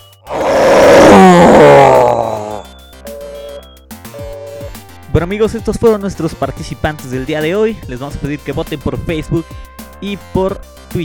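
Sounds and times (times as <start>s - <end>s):
contest participant imitating a lion's roar: 0.3s - 2.7s
speech: 5.3s - 11.0s.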